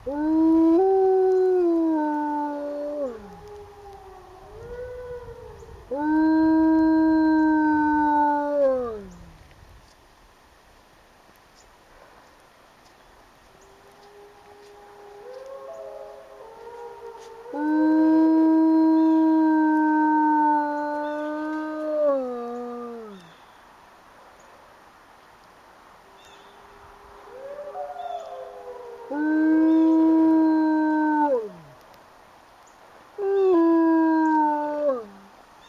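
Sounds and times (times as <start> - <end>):
wolf howling: 0.0 - 9.4, 13.6 - 23.3, 26.5 - 31.9, 33.2 - 35.3.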